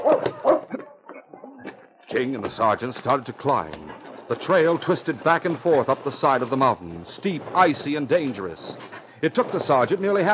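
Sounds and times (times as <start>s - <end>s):
distant dogs barking and yipping: 0.0s - 2.1s
speech: 2.1s - 10.3s.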